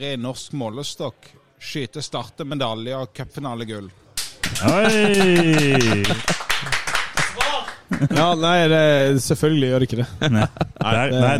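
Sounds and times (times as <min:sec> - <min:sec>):
speech: 0:00.0 - 0:06.4, 0:08.0 - 0:11.3
applause from a small group: 0:04.2 - 0:08.4
person cheering: 0:04.5 - 0:06.4, 0:07.3 - 0:07.8
laughter: 0:04.5 - 0:06.8, 0:07.6 - 0:08.6, 0:10.0 - 0:11.3.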